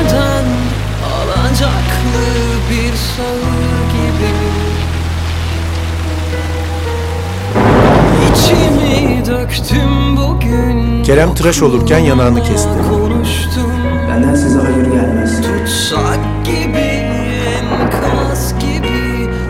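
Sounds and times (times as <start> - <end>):
steady rain hissing: 0.0 - 19.4
thunder: 6.2 - 10.1, 17.6 - 19.4
speech: 11.1 - 13.6.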